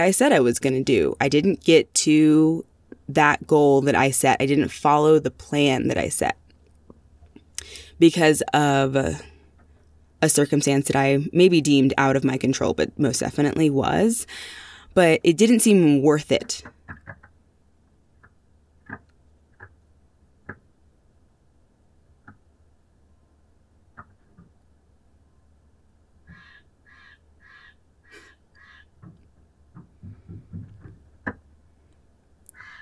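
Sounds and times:
speech: 0:00.0 - 0:06.4, 0:07.6 - 0:09.3, 0:10.2 - 0:16.8
bird harsh crow-like squawks: 0:26.3 - 0:28.9, 0:32.6 - 0:32.8.

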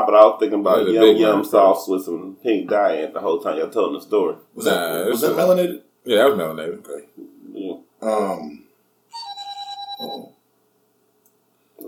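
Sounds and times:
speech: 0:00.1 - 0:07.2, 0:08.0 - 0:08.6
mobile phone ringtone with bright pulsing electronic melody: 0:09.1 - 0:10.4.

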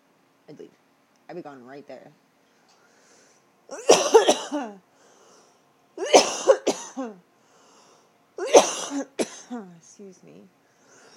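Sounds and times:
speech: 0:00.5 - 0:02.3, 0:03.7 - 0:04.9, 0:07.0 - 0:07.3, 0:08.9 - 0:10.6
person coughing harsh throaty hacking coughs: 0:03.7 - 0:04.8, 0:06.0 - 0:07.2, 0:08.4 - 0:09.7.

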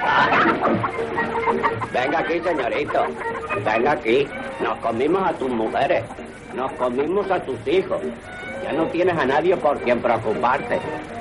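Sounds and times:
agitated rooster clucking while chased by a coachman on a hacienda: 0:00.0 - 0:04.8
steady hiss: 0:00.0 - 0:11.1
speech: 0:00.7 - 0:11.1.

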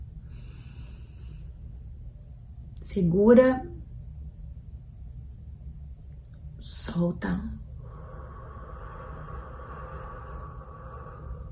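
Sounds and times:
deep inhale during a guided relaxation breathing exercise: 0:00.0 - 0:02.0, 0:07.7 - 0:11.5
low steady hum: 0:00.0 - 0:11.5
speech: 0:02.9 - 0:03.7, 0:07.0 - 0:07.6.

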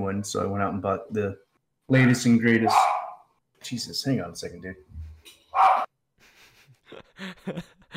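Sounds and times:
speech: 0:00.0 - 0:02.9, 0:03.6 - 0:05.9, 0:06.9 - 0:07.9
dog barking: 0:02.0 - 0:03.3, 0:05.6 - 0:05.9.

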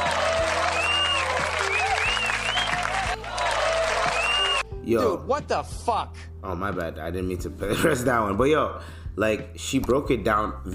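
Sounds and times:
crowd applause: 0:00.0 - 0:04.6
whoops and whistles from a crowd: 0:00.4 - 0:03.2, 0:04.0 - 0:04.6
speech: 0:04.9 - 0:10.7.

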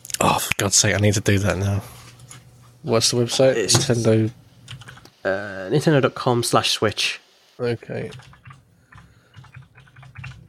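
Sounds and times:
speech: 0:00.3 - 0:02.0, 0:02.8 - 0:04.4, 0:05.2 - 0:08.4
typing on a computer keyboard: 0:04.7 - 0:05.0, 0:08.0 - 0:10.4.

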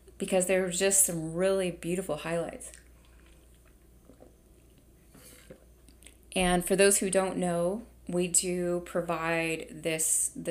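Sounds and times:
speech: 0:00.2 - 0:02.8, 0:06.4 - 0:10.4
person sipping and swallowing water: 0:02.8 - 0:04.8.

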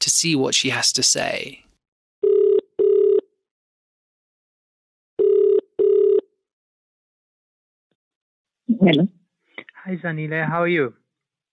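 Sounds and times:
speech: 0:00.2 - 0:01.7, 0:08.7 - 0:09.2, 0:09.8 - 0:11.0
phone ringback tone while placing a call: 0:02.2 - 0:03.3, 0:05.2 - 0:06.3.

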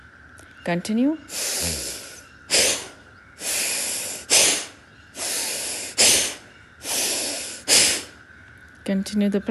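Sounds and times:
speech: 0:00.7 - 0:02.0, 0:08.9 - 0:09.5
deep breathing in and out in a guided breathing exercise: 0:01.3 - 0:08.3.

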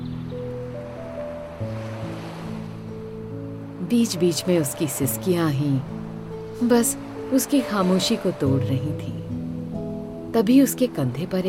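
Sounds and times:
ocean surf on a beach: 0:00.0 - 0:11.4
speech: 0:03.9 - 0:09.3, 0:10.3 - 0:11.4.

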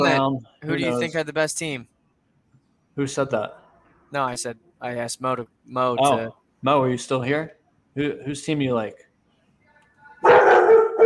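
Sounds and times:
speech: 0:00.0 - 0:01.9, 0:03.0 - 0:09.1
dog barking: 0:10.2 - 0:11.0.

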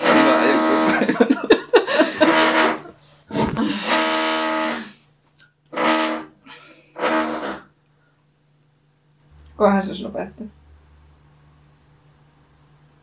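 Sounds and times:
neighbor drilling through the wall: 0:00.0 - 0:01.1, 0:02.2 - 0:05.0, 0:05.7 - 0:07.7
laughter: 0:00.0 - 0:04.0
speech: 0:09.6 - 0:10.6.

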